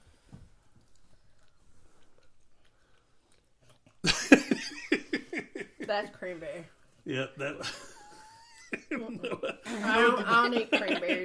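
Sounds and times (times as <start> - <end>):
person chewing food: 0.0 - 9.6
soft mouth clicks: 0.3 - 4.1
laughter: 4.0 - 6.3, 7.1 - 11.2
speech: 5.9 - 7.9, 8.9 - 11.2.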